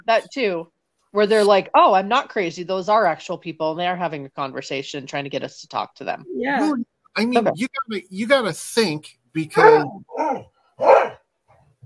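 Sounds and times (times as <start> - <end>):
speech: 0.1 - 11.2
dog barking: 9.6 - 11.3.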